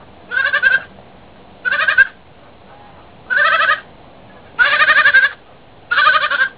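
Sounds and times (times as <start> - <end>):
goats calling mama: 0.3 - 0.9, 1.6 - 2.2, 3.3 - 6.5.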